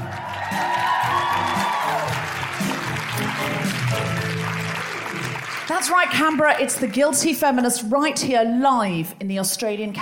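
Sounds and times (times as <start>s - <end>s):
audience cheers and whoops: 0.0s - 3.4s
large audience clapping at a live show in Canberra: 0.0s - 7.2s
speech: 5.7s - 9.9s.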